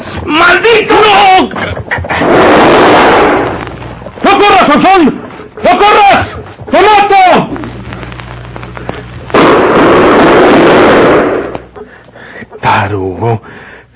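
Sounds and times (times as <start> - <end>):
speech: 0.2 - 1.8
rapid gunfire: 2.1 - 3.8, 8.9 - 11.5
man shouting urgently: 4.2 - 7.5.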